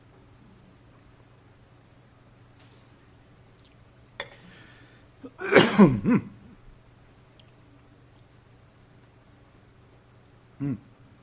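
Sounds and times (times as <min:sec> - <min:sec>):
person coughing from a menthol throat lozenge stuck in the throat: 0:04.2 - 0:04.6, 0:05.2 - 0:06.4
throat clearing: 0:04.2 - 0:04.6, 0:05.2 - 0:06.4, 0:10.6 - 0:10.9.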